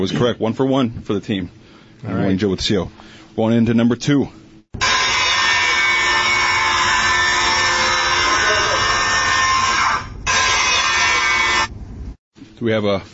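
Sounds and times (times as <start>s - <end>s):
speech: 0.0s - 4.9s, 12.6s - 13.1s
miter saw cutting: 4.8s - 11.7s.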